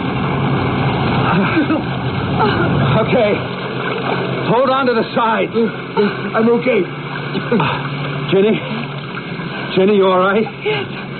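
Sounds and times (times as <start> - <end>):
boat motor running: 0.0 - 11.1
speech: 3.0 - 3.6, 4.5 - 8.8, 9.8 - 11.0.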